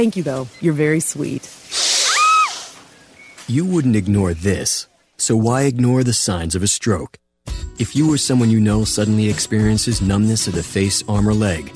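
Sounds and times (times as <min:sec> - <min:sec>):
speech: 0:00.0 - 0:01.7, 0:03.5 - 0:07.2, 0:07.8 - 0:11.7
snake hissing: 0:01.7 - 0:02.8.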